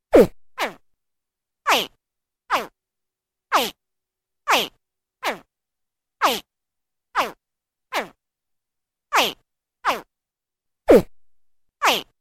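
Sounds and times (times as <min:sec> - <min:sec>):
baby crocodile: 0:00.2 - 0:00.8, 0:01.6 - 0:02.8, 0:03.5 - 0:03.8, 0:04.4 - 0:05.5, 0:06.2 - 0:06.5, 0:07.1 - 0:08.2, 0:09.1 - 0:10.1, 0:11.8 - 0:12.1.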